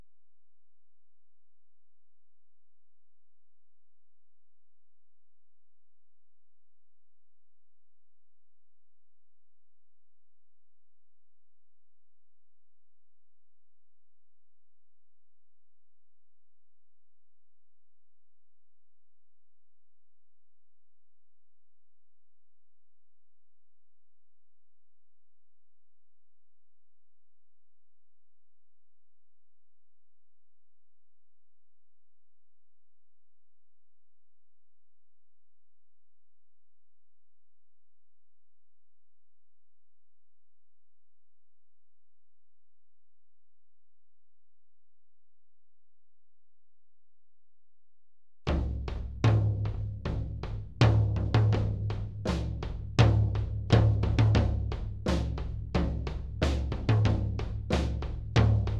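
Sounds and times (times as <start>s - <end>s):
tom drums: 48.5s - 58.7s.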